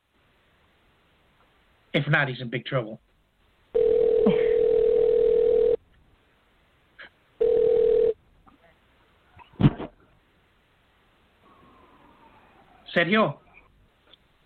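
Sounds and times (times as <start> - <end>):
speech: 2.0 - 3.1, 13.0 - 13.4
phone ringback tone: 3.8 - 5.8, 7.4 - 8.2.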